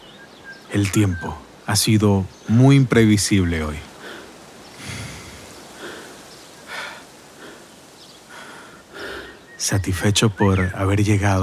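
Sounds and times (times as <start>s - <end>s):
speech: 0.7s - 3.9s, 9.7s - 11.4s
heavy panting breaths after a climb: 3.9s - 9.5s.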